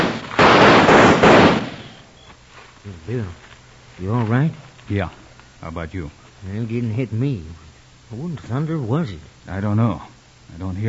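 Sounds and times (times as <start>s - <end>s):
gunshots during a nighttime Western-style ambush: 0.0s - 2.1s
speech: 2.8s - 3.4s, 4.0s - 10.8s.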